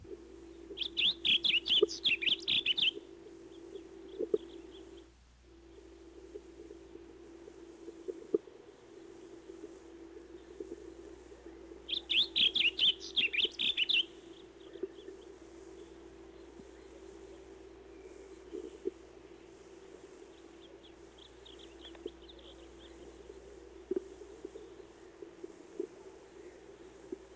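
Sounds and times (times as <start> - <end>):
steady low hum: 0.0 - 27.3
blue grosbeak singing warbled phrases: 0.7 - 5.1, 11.4 - 23.7.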